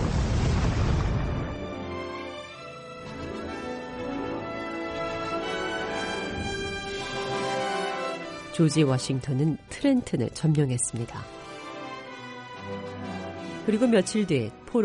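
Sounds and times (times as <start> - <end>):
loud deep explosion like a cannon blast: 0.0 - 1.8
sustained dramatic music: 0.3 - 14.8
speech: 8.6 - 11.4, 13.6 - 14.8.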